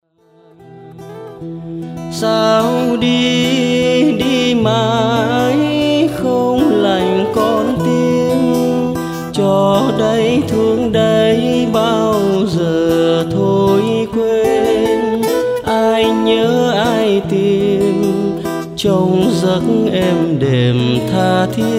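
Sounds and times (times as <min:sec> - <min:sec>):
acoustic guitar bolero: 0:00.2 - 0:21.7.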